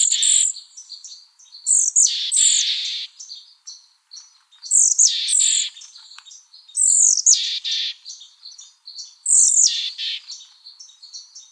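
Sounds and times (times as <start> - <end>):
Mexican Chickadee calling sharp high notes and rasping buzzy notes: 1.7 - 3.3, 4.7 - 5.9, 6.8 - 8.2, 9.3 - 10.5.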